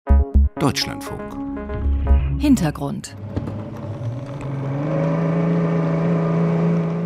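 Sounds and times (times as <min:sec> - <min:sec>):
speech: 0:00.6 - 0:01.4, 0:02.4 - 0:03.5
motorboat engine droning as the boat speeds up leaving a harbor: 0:01.8 - 0:07.0.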